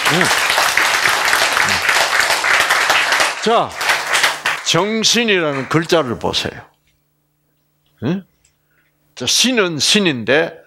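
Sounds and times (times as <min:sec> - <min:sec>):
audience applause in a lecture hall: 0:00.0 - 0:06.4
speech: 0:00.1 - 0:00.4, 0:03.4 - 0:03.8, 0:04.7 - 0:06.7, 0:08.0 - 0:08.3, 0:09.2 - 0:10.6.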